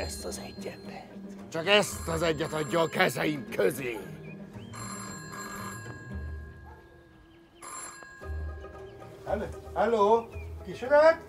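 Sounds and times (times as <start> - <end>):
speech: 0.2 - 4.2, 9.3 - 11.2
old-fashioned telephone bell ringing: 1.8 - 6.8, 7.6 - 8.8.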